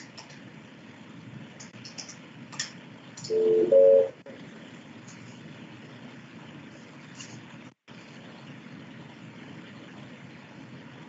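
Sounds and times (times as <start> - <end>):
quiet hum: 0.0 - 11.0
dual-pitch phone keypad beeps on a speakerphone: 3.3 - 4.1.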